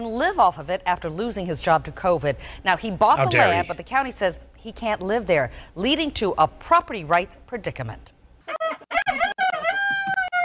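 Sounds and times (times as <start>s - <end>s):
speech: 0.0s - 9.0s
rooster crowing: 8.5s - 10.4s.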